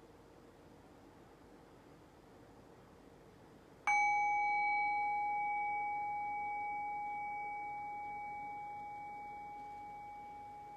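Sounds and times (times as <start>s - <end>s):
single bell ringing with a clear pure tone: 3.9s - 10.7s.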